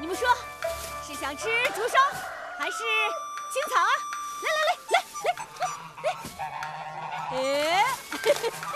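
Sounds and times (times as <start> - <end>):
speech: 1.2 - 5.8, 6.4 - 8.7
goose honking: 4.4 - 8.7.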